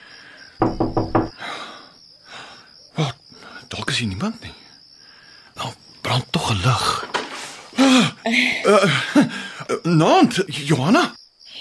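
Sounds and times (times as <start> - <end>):
hiss: 0.0 - 11.5
knocking on a door: 0.6 - 1.4
speech: 3.7 - 4.6, 6.5 - 7.0, 7.9 - 11.2.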